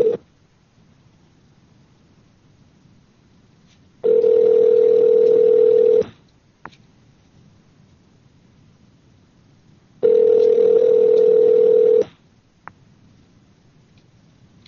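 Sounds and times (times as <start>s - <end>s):
telephone ringback tone heard through the line: 0.0s - 0.2s, 4.0s - 6.1s, 10.0s - 12.1s.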